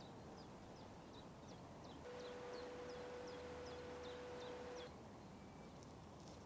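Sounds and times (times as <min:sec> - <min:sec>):
small birds chirping: 0:00.0 - 0:05.9
faint roar of motorway traffic: 0:01.7 - 0:06.1
sustained tonal whine: 0:02.1 - 0:04.9.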